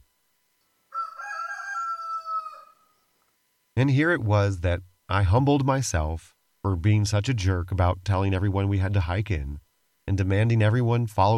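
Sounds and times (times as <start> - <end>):
rooster crowing: 0.9 - 3.1
speech: 3.8 - 11.3.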